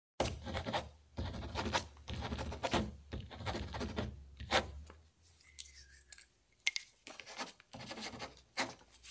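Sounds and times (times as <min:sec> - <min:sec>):
writing with a ballpoint pen: 0:00.2 - 0:04.8, 0:07.3 - 0:08.8.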